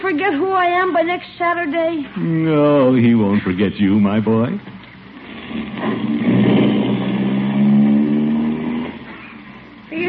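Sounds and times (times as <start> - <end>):
speech: 0.0 - 4.8, 5.5 - 7.0
car engine driving away: 5.3 - 10.0.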